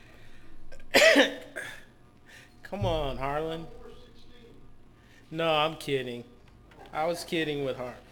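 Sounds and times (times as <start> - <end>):
person coughing with a loud harsh hack: 0.7 - 2.0
speech: 2.7 - 3.8, 5.3 - 8.0.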